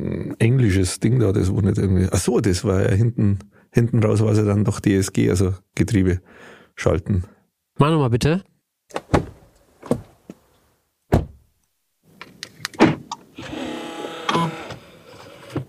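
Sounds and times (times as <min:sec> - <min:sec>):
speech: 0:00.0 - 0:09.0
sharp clicks and thunks from a car: 0:08.9 - 0:10.1, 0:11.1 - 0:11.4, 0:12.2 - 0:13.3
car petrol pump whirring as it primes: 0:13.4 - 0:15.6.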